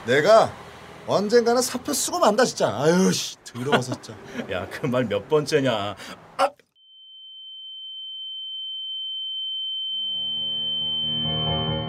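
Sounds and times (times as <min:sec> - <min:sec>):
speech: 0:00.0 - 0:06.6
laughter: 0:03.5 - 0:04.7
high-pitched ear ringing tone effect: 0:06.8 - 0:11.8.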